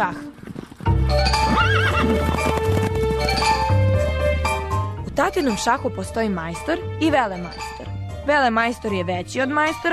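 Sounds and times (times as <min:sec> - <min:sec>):
speech: 0:00.0 - 0:00.3, 0:05.2 - 0:09.9
horses galloping hoofbeats: 0:00.0 - 0:03.9
horse whinnying: 0:00.8 - 0:03.3.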